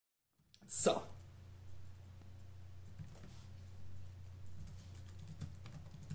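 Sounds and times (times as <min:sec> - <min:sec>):
speech: 0:00.7 - 0:01.1
steady low hum: 0:01.0 - 0:05.7
typing on a laptop keyboard: 0:02.9 - 0:03.3, 0:04.6 - 0:06.1.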